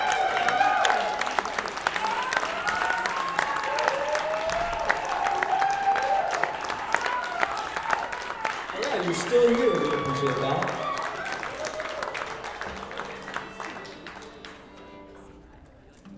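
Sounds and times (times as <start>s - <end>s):
audience whoops and cheers: 0.0s - 12.4s
mid-sized audience applauding: 0.0s - 15.3s.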